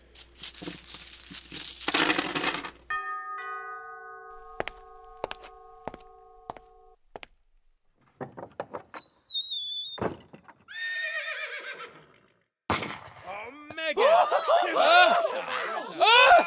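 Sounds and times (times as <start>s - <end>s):
keys rattling and jingling: 0.0s - 2.8s
laughter: 13.8s - 16.4s.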